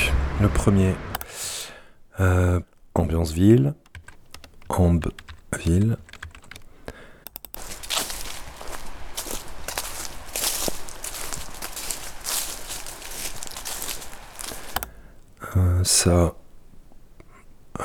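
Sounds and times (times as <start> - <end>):
speech: 0.4 - 1.1, 2.2 - 3.8, 4.7 - 6.1, 15.9 - 16.4
footsteps crunching and swishing through grass: 7.6 - 14.8.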